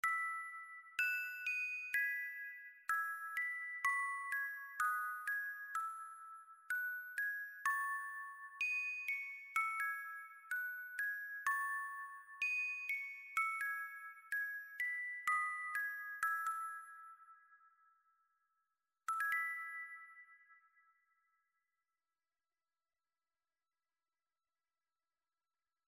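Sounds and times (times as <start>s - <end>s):
music boxes: 0.0s - 17.7s, 19.1s - 20.8s
celesta: 0.0s - 18.4s, 19.1s - 21.4s.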